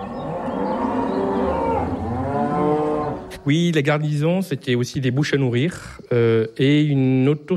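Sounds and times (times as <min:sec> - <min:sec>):
cow mooing in a long droning bellow: 0:00.0 - 0:03.4
speech: 0:03.4 - 0:07.5.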